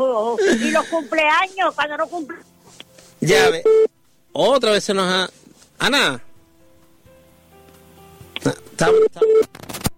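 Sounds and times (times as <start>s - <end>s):
speech: 0.2s - 2.6s, 3.2s - 6.3s, 8.4s - 9.6s
telephone busy tone beeps after a call cuts off: 3.3s - 3.9s, 8.8s - 9.5s.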